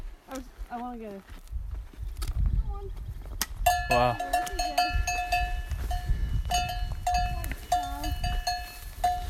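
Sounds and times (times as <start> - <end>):
speech: 0.3 - 1.5, 2.8 - 3.2, 3.9 - 5.2
cowbell on a moving cow clanking: 3.7 - 9.2.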